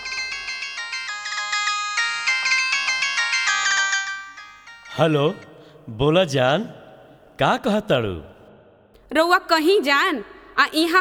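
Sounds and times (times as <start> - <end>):
phone ringing with a bright electronic ringtone melody: 0.0 - 5.5
speech: 5.0 - 6.8, 7.4 - 8.4, 9.1 - 10.9.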